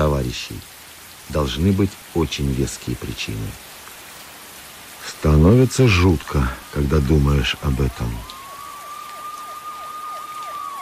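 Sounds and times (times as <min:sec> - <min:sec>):
speech: 0:00.0 - 0:00.7, 0:01.3 - 0:03.7, 0:05.0 - 0:08.3
police car sirens wailing in a fast repeating yelp: 0:06.3 - 0:10.8.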